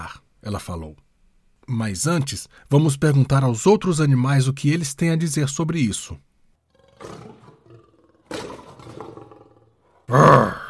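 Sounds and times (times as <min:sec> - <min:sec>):
speech: 0:00.1 - 0:01.0, 0:01.7 - 0:06.3, 0:07.0 - 0:07.3, 0:10.1 - 0:10.6
lion growling: 0:06.7 - 0:10.6.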